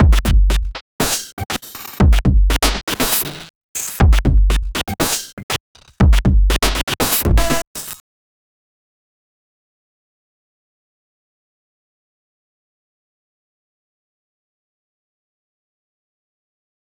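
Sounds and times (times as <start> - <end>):
glitchy drum loop: 0.0 - 8.0.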